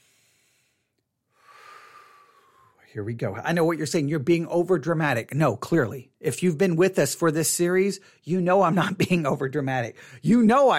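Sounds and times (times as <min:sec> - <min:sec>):
deep breath: 0:00.0 - 0:02.9, 0:10.0 - 0:10.2
speech: 0:02.9 - 0:10.7.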